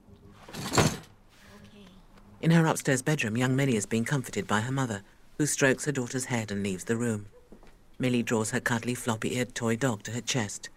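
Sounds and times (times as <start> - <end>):
drawer slamming shut: 0.5 - 1.1
speech: 2.4 - 7.4, 8.0 - 10.7.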